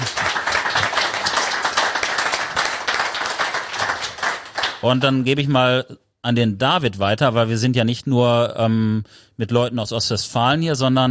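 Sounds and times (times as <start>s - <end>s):
audience applause: 0.0s - 5.2s
speech: 4.8s - 11.1s.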